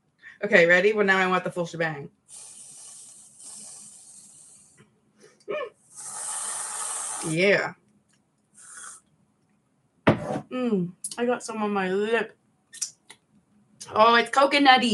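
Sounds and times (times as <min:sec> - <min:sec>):
speech: 0:00.4 - 0:02.5, 0:07.2 - 0:07.8, 0:10.5 - 0:12.4, 0:13.8 - 0:14.9
aerosol whipped cream can spraying: 0:02.3 - 0:04.6, 0:05.9 - 0:07.3, 0:08.6 - 0:09.0.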